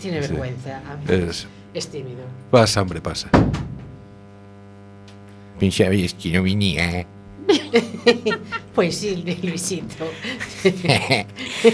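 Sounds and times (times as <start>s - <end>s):
speech: 0.0s - 3.6s, 5.6s - 11.7s
wooden door opening: 3.3s - 4.2s
laughter: 7.4s - 11.7s.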